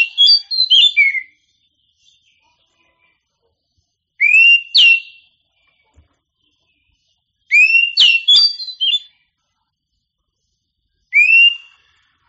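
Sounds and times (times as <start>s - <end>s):
Oriental magpie-robin singing: 0.0s - 2.4s, 4.2s - 5.3s, 7.5s - 9.1s, 11.1s - 11.8s.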